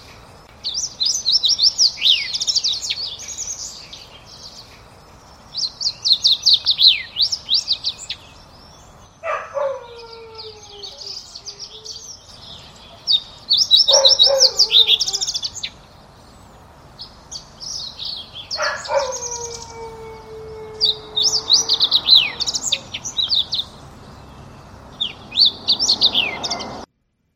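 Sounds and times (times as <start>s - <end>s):
fox sparrow song with sliding whistles: 0.0s - 26.9s
dog howling: 9.2s - 12.1s, 13.9s - 15.5s, 18.5s - 23.4s.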